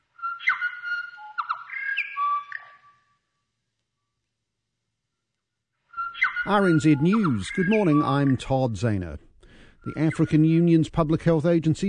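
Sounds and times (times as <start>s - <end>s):
New Zealand bellbird korimako singing bell-like whistled notes: 0.2s - 3.0s, 6.0s - 8.6s
speech: 6.4s - 11.8s.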